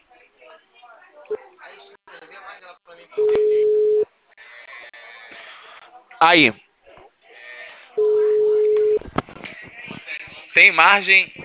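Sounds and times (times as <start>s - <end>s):
continuous noise: 0.0s - 11.4s
speech: 2.8s - 3.4s, 6.2s - 6.6s, 10.6s - 11.4s
telephone ringback tone while a call is placed: 3.2s - 4.0s, 8.0s - 9.0s.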